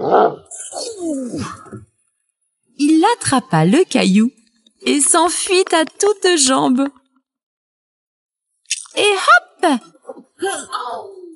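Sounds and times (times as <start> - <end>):
human voice imitating the growl of a big bad wolf: 0.0 - 1.9
speech: 0.0 - 1.9, 2.8 - 7.0, 9.0 - 11.3.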